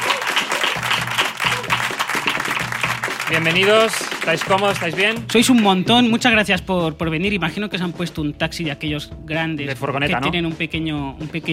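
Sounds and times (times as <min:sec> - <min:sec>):
studio audience applause: 0:00.0 - 0:05.4
speech: 0:03.3 - 0:11.5.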